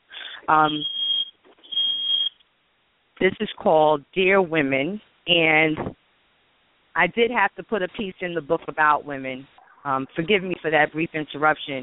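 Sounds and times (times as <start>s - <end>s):
speech: 0.5s - 1.0s, 3.2s - 6.0s, 7.0s - 11.8s
smoke alarm in an apartment set off by the oven: 0.5s - 2.4s.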